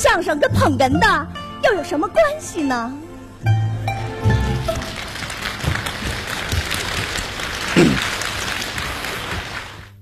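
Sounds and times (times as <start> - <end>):
speech: 0.1 - 3.7
audience applause at a crosstalk comedy show: 4.0 - 10.0.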